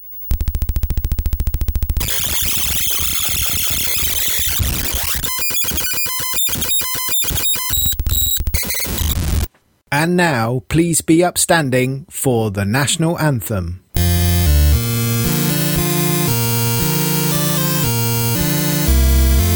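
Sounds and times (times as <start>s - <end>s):
high-pitched computer tape loading noise from a tape loader: 0.3s - 9.5s, 14.0s - 19.5s
speech: 10.0s - 13.8s.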